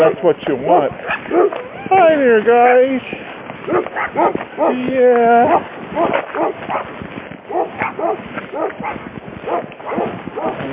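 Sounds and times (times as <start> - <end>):
speech: 0.0 - 10.7
dog barking excitedly with sharp barks and high yips: 1.0 - 1.6, 3.7 - 4.8, 5.4 - 6.9, 7.5 - 10.6.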